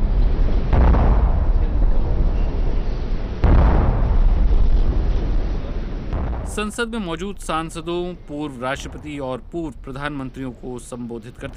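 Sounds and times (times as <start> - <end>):
steady outdoor noise: 0.0 - 11.5
ceremonial 21-gun salute cannon booms with rolling echo: 0.4 - 7.4
speech: 6.6 - 11.5.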